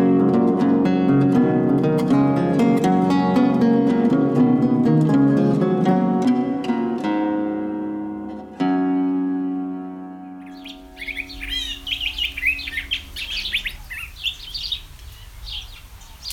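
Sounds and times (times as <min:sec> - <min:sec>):
sustained musical tone: 0:00.0 - 0:13.8
curve-billed thrasher singing: 0:10.4 - 0:16.3.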